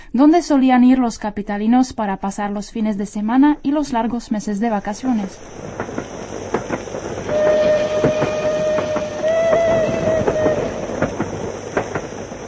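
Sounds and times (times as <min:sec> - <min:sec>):
speech: 0:00.1 - 0:06.0
train rolling rumble on a line north of Prague: 0:04.5 - 0:12.4
train clickety-clack wheel beats on rails: 0:05.6 - 0:12.4
sustained whistle-like tone: 0:07.3 - 0:11.2.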